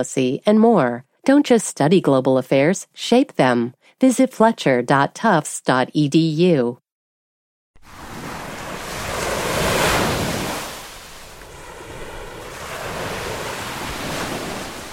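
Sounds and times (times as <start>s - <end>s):
speech: 0.0s - 6.8s
gentle ocean waves washing onto a beach in summer: 7.8s - 14.9s.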